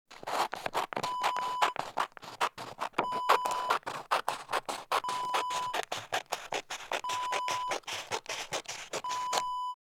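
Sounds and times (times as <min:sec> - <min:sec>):
scissors cutting: 0:00.1 - 0:09.6.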